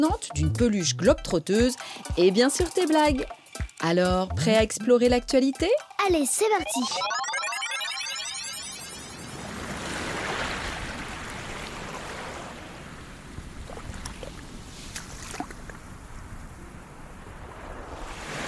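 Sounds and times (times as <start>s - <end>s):
speech: 0.0s - 7.3s
sea waves breaking on shore: 9.2s - 18.4s.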